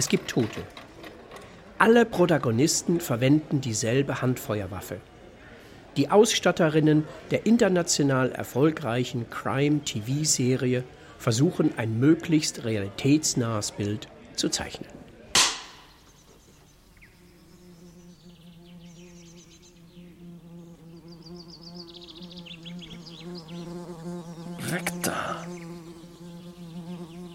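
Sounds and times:
speech: 0.0s - 0.8s, 1.8s - 5.1s, 6.0s - 15.0s
sharp crack: 15.3s - 16.0s
wasp buzzing: 16.7s - 27.3s.

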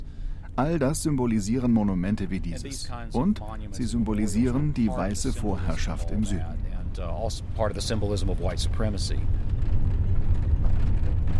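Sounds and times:
speech: 0.6s - 9.4s
small electric car driving around a monument: 3.8s - 11.3s.

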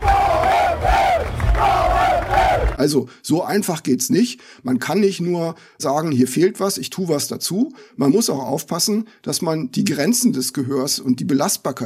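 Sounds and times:
dense crowd at a sports event chanting and roaring in unison: 0.0s - 2.8s
speech: 2.8s - 11.8s.

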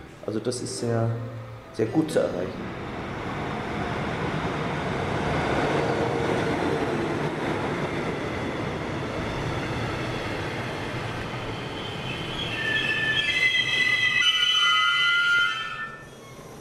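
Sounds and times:
train rumbling along the rails: 0.0s - 16.5s
speech: 0.2s - 2.9s
high metallic train wheel squeals: 11.6s - 16.5s.

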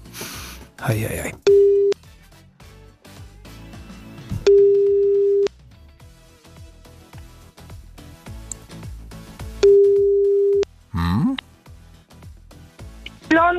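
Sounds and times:
quiet music: 0.0s - 13.5s
speech: 0.8s - 1.6s
outgoing phone call ringback tone: 1.5s - 2.0s, 4.4s - 5.5s, 9.6s - 10.6s.

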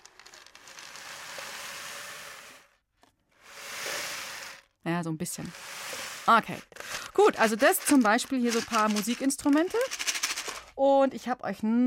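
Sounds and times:
speech: 4.8s - 5.7s, 6.3s - 10.0s, 10.8s - 11.8s
homemade rain stick being tipped, grains pattering: 6.8s - 10.7s.

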